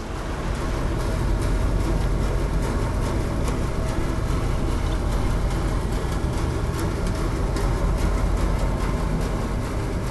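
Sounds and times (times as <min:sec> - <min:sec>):
boat engine recorded underwater: 0:00.0 - 0:10.0.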